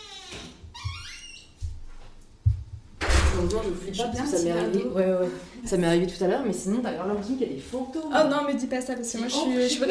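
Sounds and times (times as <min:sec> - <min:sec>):
unlatched door creaking open by itself: 0:00.0 - 0:01.8, 0:03.0 - 0:03.7
room noise: 0:00.0 - 0:09.9
soft bumps: 0:01.6 - 0:03.0
speech: 0:03.4 - 0:09.9.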